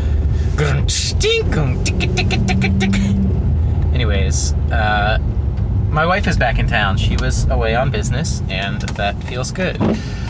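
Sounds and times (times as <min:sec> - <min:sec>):
car engine and road rumble on a morning commute: 0:00.0 - 0:10.2
brief vocal sounds: 0:00.4 - 0:03.4
speech: 0:00.6 - 0:03.2, 0:04.0 - 0:05.3, 0:05.9 - 0:10.2.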